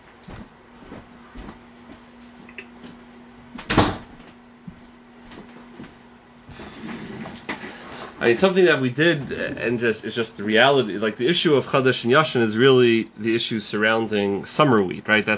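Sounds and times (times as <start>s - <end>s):
low steady hum: 0.0s - 15.3s
door thudding shut: 3.6s - 4.1s
speech: 8.2s - 15.3s.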